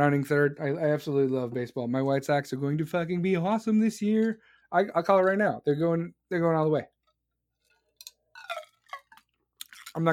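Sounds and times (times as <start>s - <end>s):
speech: 0.0s - 7.0s, 10.0s - 10.1s
person chewing and crunching ice: 8.0s - 10.0s.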